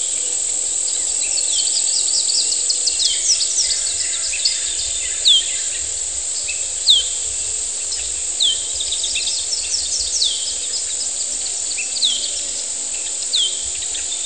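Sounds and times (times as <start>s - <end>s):
cicadas whining on a humid morning outside San Cristóbal de Las Casas, Chiapas: 0.0s - 14.2s.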